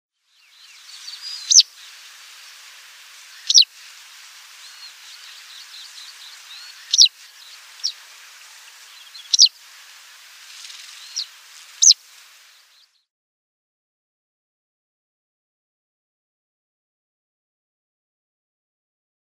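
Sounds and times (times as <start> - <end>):
Citrine Wagtail calls: 0.4 - 13.0.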